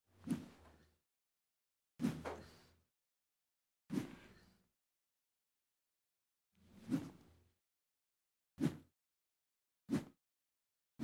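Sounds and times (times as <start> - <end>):
karate wooden sword swishing: 2.0 - 2.4, 6.8 - 7.2, 8.6 - 8.8, 9.9 - 10.1.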